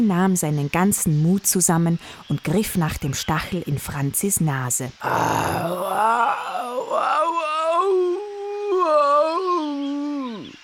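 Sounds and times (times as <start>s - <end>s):
speech: 0.0s - 7.2s
human voice imitating a jaguar's pained howl: 5.0s - 10.6s.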